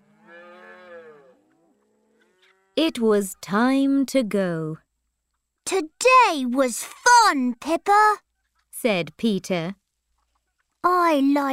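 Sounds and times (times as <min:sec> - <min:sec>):
calf mooing: 0:00.0 - 0:02.8
speech: 0:02.8 - 0:04.8, 0:05.7 - 0:08.2, 0:08.8 - 0:09.8, 0:10.8 - 0:11.5.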